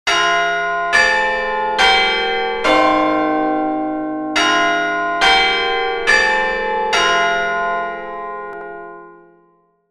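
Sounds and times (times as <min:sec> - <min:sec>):
Elks Lodge eleventh hour clock chime: 0:00.1 - 0:09.3.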